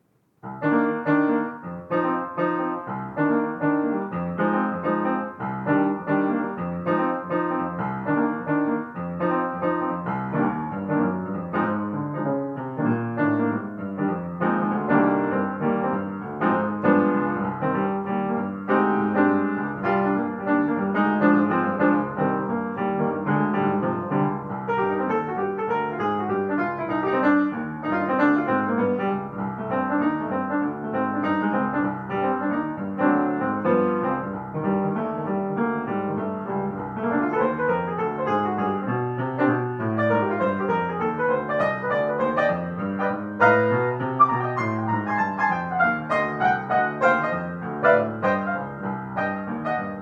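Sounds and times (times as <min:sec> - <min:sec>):
energetic minor-key acoustic piano piece: 0:00.0 - 0:50.0.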